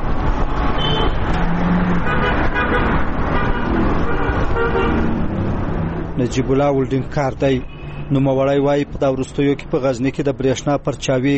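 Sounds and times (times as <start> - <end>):
dense traffic roar on a crowded city street beside a highway: 0.0 - 11.3
car horn toots: 0.8 - 1.3, 2.0 - 5.1
speech: 6.2 - 11.3.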